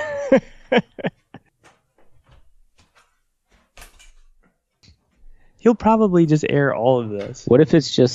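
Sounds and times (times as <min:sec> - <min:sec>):
laughter: 0:00.0 - 0:01.4
speech: 0:00.3 - 0:01.1, 0:05.6 - 0:08.1
patio chair clattering and bumping as it is pulled out: 0:01.1 - 0:05.5
hallway closet door creaking open: 0:01.6 - 0:04.5.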